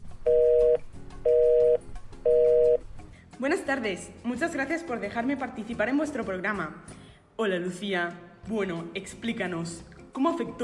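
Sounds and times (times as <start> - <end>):
telephone line ringing for an incoming call: 0.3 - 2.8
speech: 3.4 - 10.6.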